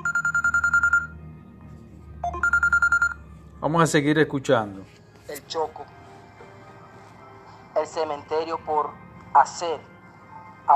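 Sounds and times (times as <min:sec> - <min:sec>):
telephone ringing with an incoming call: 0:00.0 - 0:01.2, 0:02.2 - 0:03.2
speech: 0:03.6 - 0:06.0, 0:07.8 - 0:09.9.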